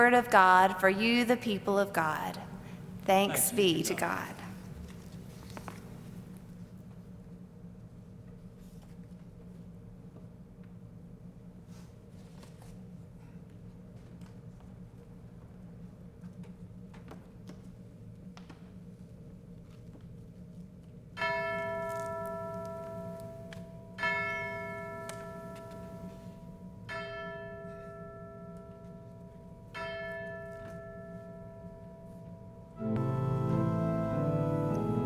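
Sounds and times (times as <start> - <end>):
speech: 0.0 - 2.5, 3.1 - 4.4
church bells ringing in slow strokes: 21.2 - 35.0.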